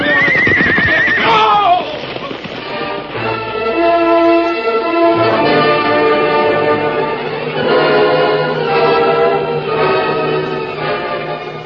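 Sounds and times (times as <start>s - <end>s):
horse whinnying: 0.0s - 2.5s
dramatic orchestral music: 2.6s - 11.6s.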